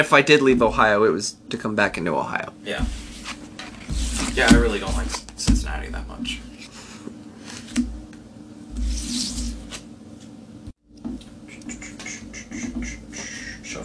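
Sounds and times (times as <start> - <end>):
speech: 0.0 - 3.0, 4.4 - 6.5
playing cards being shuffled: 3.0 - 5.3, 8.8 - 9.9.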